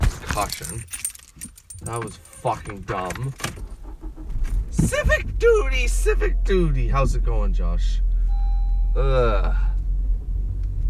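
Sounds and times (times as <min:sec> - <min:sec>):
low steady car interior rumble: 0:00.0 - 0:10.8
bright metallic keys jangling: 0:00.3 - 0:02.8
speech: 0:00.4 - 0:03.7, 0:04.7 - 0:08.1, 0:09.0 - 0:09.7.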